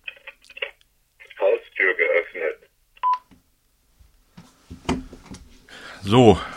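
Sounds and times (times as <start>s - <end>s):
recorded voice announcement through a small tinny alarm system speaker: 0.6s - 2.7s, 6.0s - 6.5s
alarm system keypad beeps: 3.0s - 3.2s
speech: 6.0s - 6.5s.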